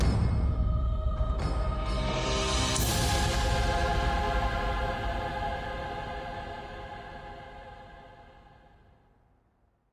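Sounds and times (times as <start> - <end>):
drums: 0.0 - 6.6.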